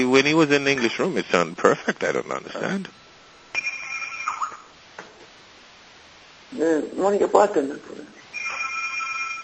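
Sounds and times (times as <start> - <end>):
speech: 0.0 - 3.0, 6.5 - 8.2
phone ringtone in steady electronic tones: 3.5 - 4.6, 8.3 - 9.4.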